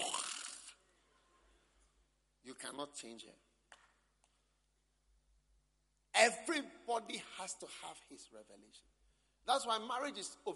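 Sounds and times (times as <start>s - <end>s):
voice imitating a woman's snore: 0.0s - 0.8s
speech: 2.6s - 3.5s, 6.2s - 10.5s.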